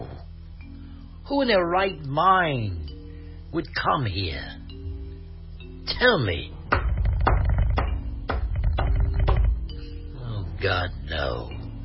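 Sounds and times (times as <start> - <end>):
speech: 1.3 - 2.8, 3.5 - 4.6, 6.0 - 6.6, 10.6 - 11.6
firm knocks at a door: 6.7 - 9.6.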